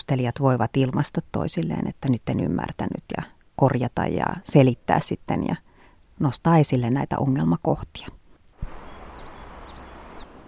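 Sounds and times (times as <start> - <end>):
speech: 0.0 - 8.2
brief low thump: 8.6 - 9.0
birds singing in short sweeping high chirps: 8.6 - 10.4.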